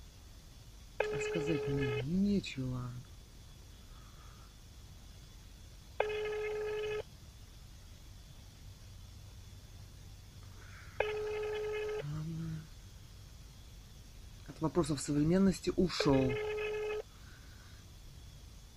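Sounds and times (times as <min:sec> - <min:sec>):
faint low hum: 0:00.0 - 0:18.7
outgoing phone call ringback tone: 0:01.0 - 0:02.1, 0:06.0 - 0:07.0, 0:11.0 - 0:12.2, 0:16.0 - 0:17.0
speech: 0:01.2 - 0:03.1, 0:14.6 - 0:16.5.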